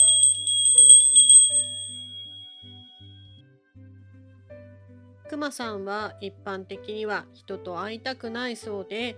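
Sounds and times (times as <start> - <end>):
small bear bell jingling outdoors: 0.0 - 2.8
speech: 5.3 - 9.1.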